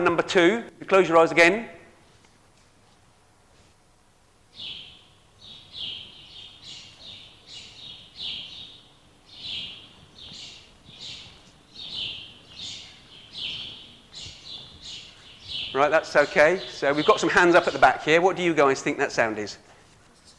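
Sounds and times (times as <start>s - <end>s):
speech: 0.0s - 1.8s, 15.8s - 19.7s
bird chirping: 4.5s - 18.8s.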